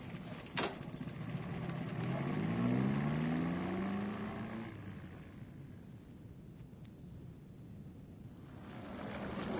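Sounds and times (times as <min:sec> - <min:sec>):
car engine revving and idling as the car pulls up: 0:00.8 - 0:05.7, 0:08.4 - 0:09.5.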